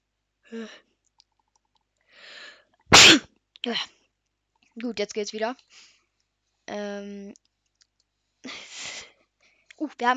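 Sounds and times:
speech: 0.5s - 0.9s, 3.0s - 4.0s, 4.8s - 5.9s, 6.7s - 7.5s, 8.4s - 8.7s, 9.8s - 10.1s
quiet inhaling breaths: 2.0s - 2.8s, 5.7s - 6.1s
short voiced exhale: 2.1s - 2.6s
person sneezing: 2.9s - 3.2s.

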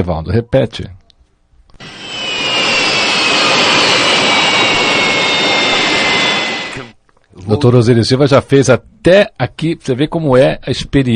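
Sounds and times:
speech: 0.0s - 1.0s, 7.4s - 11.1s
jet engine roar with a high whining tone: 1.8s - 7.0s.

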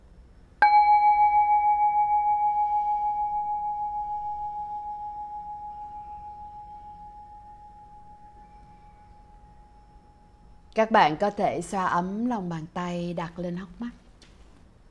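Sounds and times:
single bell struck and ringing with a clear sustained tone: 0.6s - 10.7s
speech: 10.8s - 14.0s.

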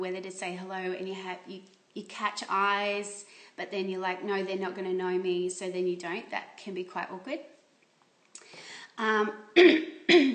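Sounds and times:
speech: 0.0s - 7.5s, 8.4s - 10.3s
person clearing throat: 9.6s - 10.3s.

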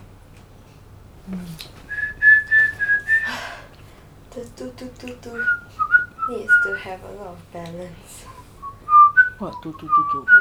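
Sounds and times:
speech: 1.3s - 1.9s, 4.4s - 8.3s, 9.4s - 10.3s
person whistling a short steady tune: 1.9s - 3.5s, 5.4s - 6.8s, 8.4s - 10.3s
breathy exhale: 3.2s - 4.0s.

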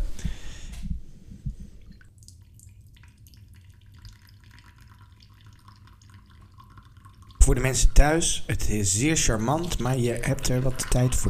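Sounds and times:
boiling water trickling and splashing from a samovar tap into a cup: 2.3s - 11.2s
speech: 7.5s - 11.2s.

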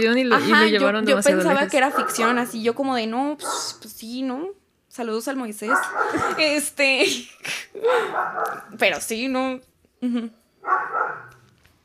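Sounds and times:
speech: 0.0s - 10.8s
dogs barking: 1.7s - 2.6s, 3.4s - 3.8s, 5.6s - 6.6s, 8.0s - 8.8s, 10.6s - 11.4s
laughter: 5.8s - 8.2s.

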